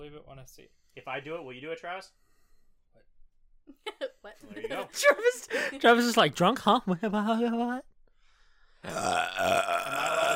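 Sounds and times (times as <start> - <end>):
speech: 0.0 - 2.3, 3.7 - 7.9, 8.8 - 10.0
long loud rumbling burp with a croaky texture: 8.8 - 10.3.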